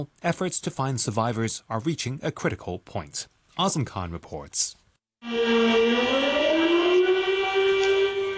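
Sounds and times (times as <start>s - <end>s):
speech: 0.0s - 6.2s
civil defense siren wailing as mourning siren: 5.2s - 8.3s.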